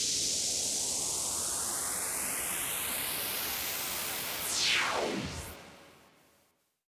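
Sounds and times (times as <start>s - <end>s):
long sweep: 0.7s - 6.0s.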